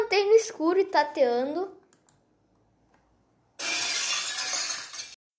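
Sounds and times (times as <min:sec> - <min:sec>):
speech: 0:00.1 - 0:01.8
glass vase knocked over and shattering: 0:03.6 - 0:05.2.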